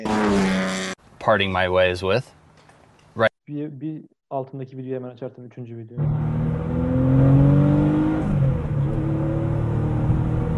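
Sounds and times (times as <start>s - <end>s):
loud car engine revving: 0.0s - 1.0s, 6.0s - 10.5s
speech: 1.2s - 2.4s, 3.2s - 7.4s.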